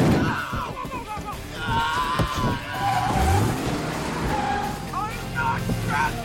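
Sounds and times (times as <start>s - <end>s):
indistinct voices: 0.2s - 6.2s
tires squealing: 1.4s - 6.2s
cars speeding past in traffic: 2.7s - 5.9s.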